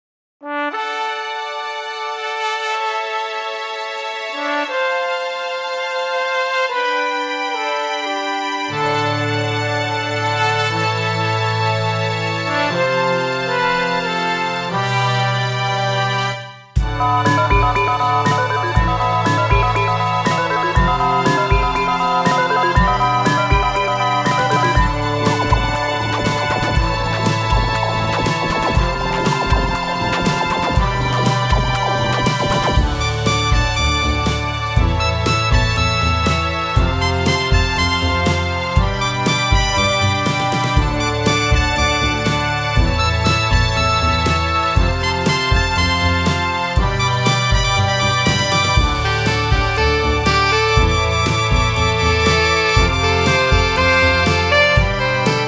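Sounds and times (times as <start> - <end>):
horns: 0.4 - 55.4
strings: 1.4 - 55.4
brush drumming: 16.8 - 34.4, 45.2 - 55.4.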